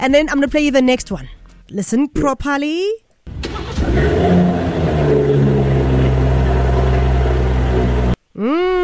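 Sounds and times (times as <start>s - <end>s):
speech: 0.0s - 3.0s, 3.9s - 5.5s, 8.4s - 8.8s
old BMW Gusheshe car engine revving and rumbling: 3.3s - 8.2s.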